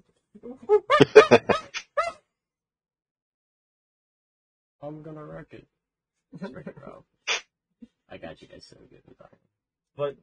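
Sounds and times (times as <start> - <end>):
speech: 0.4 - 1.6, 5.4 - 7.1, 8.4 - 10.2
laughter: 0.7 - 1.8, 6.4 - 6.9
person imitating monkey calls with hooting and shrieking: 0.7 - 2.2.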